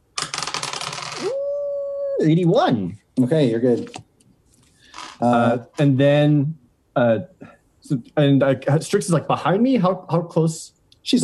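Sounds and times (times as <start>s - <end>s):
percentile dice clattering across a hard surface: 0.2s - 1.2s
speech: 2.2s - 4.1s, 5.2s - 11.2s.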